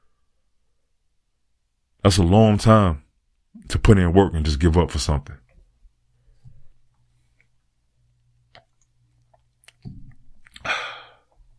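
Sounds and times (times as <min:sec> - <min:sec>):
speech: 0:02.0 - 0:03.0, 0:03.6 - 0:05.4
person sipping a drink: 0:08.5 - 0:11.4.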